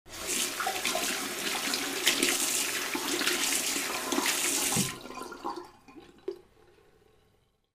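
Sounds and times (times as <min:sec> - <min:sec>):
washing hands: 0:00.1 - 0:05.4.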